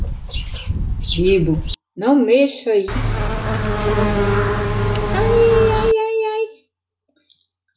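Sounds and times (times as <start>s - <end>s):
speech: 1.2s - 4.5s
many bees swarming around a beehive: 2.9s - 6.0s.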